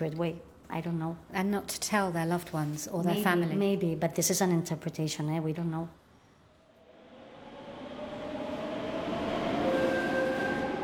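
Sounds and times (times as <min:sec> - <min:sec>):
speech: 0:00.0 - 0:06.0
train rumbling on rails: 0:06.8 - 0:10.8.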